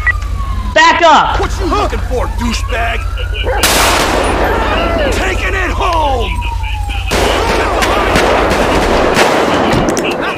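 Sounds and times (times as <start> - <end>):
speech: 1.0 - 6.5
rapid bursts of gunfire: 3.6 - 4.8, 7.0 - 10.3.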